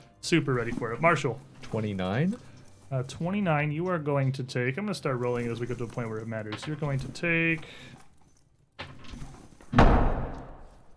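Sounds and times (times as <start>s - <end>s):
speech: 0.2s - 8.0s
heavy door slamming shut: 9.7s - 10.8s.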